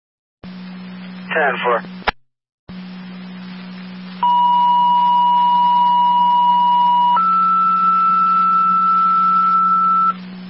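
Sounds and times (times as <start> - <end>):
low radio hum: 0.4 - 10.4
speech: 1.3 - 2.0
two-tone dispatch pager alert for an EMS call: 4.2 - 10.2.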